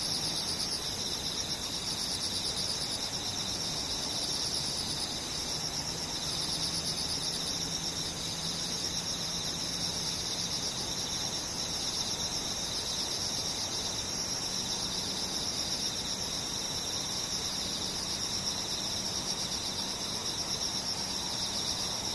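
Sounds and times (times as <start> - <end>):
cicadas and other insects buzzing: 0.0 - 22.1.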